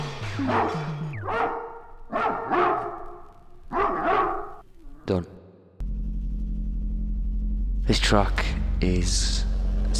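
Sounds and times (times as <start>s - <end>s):
speech: 0.4s - 1.6s, 5.1s - 5.4s, 7.9s - 9.9s
dog barking and yelping on a music record: 0.4s - 4.6s
low steady humming tones: 5.8s - 9.9s.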